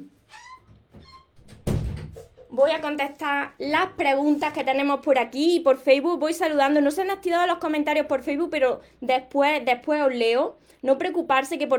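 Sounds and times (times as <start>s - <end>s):
door creaking as it swings shut: 0.1s - 2.5s
door closing with a solid thud: 0.4s - 2.3s
speech: 2.5s - 11.7s.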